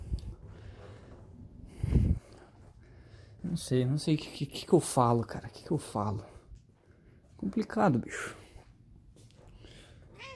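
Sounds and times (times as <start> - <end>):
low hum: 0.0 - 10.3
speech: 3.5 - 6.3, 7.4 - 8.4
cat meowing: 10.1 - 10.3.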